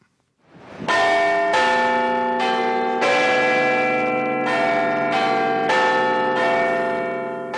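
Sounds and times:
Big Ben clock bells chiming: 0:00.9 - 0:07.5.

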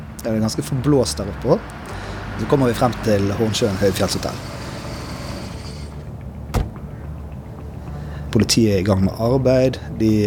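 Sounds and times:
speech: 0:00.2 - 0:04.6, 0:08.4 - 0:10.2
steady low rumble of a moving car: 0:00.8 - 0:08.4
brief whirring hiss: 0:02.4 - 0:06.7
single sharp thump: 0:06.5 - 0:06.9.

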